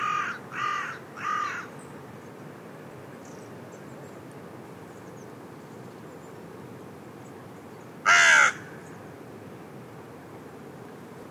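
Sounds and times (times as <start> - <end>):
Carrion crow Corvus corone cawing: 0.0 - 1.7, 8.0 - 8.8.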